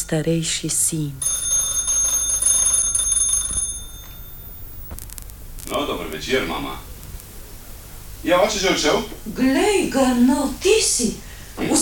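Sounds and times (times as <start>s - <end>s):
continuous electronic doorbell ringing with high-pitched buzzing tone: 0.0s - 4.9s
speech: 0.1s - 1.5s, 6.2s - 6.9s, 8.2s - 11.8s.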